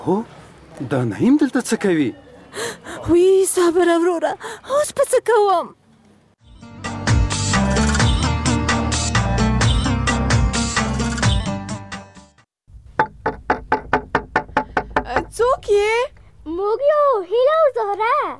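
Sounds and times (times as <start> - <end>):
speech: 0.0 - 5.8, 15.4 - 18.3
loud dense music: 6.5 - 12.3
knocking on a door: 13.0 - 15.4.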